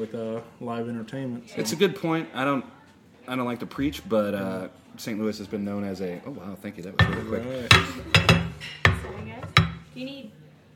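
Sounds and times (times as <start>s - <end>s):
speech: 0.0s - 10.4s
plates and silverware placed on a hard table: 7.0s - 9.9s.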